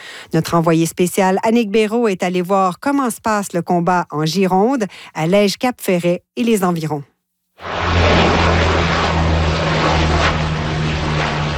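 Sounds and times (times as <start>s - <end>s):
speech: 0.3s - 8.2s
firefighting water bomber aircraft engine roar overhead: 7.6s - 11.5s.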